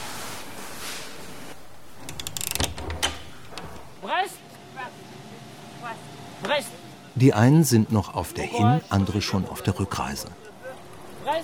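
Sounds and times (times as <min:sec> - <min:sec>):
dormitory door latch clicks: 0:02.0 - 0:04.0
speech: 0:06.6 - 0:10.5, 0:11.3 - 0:11.4.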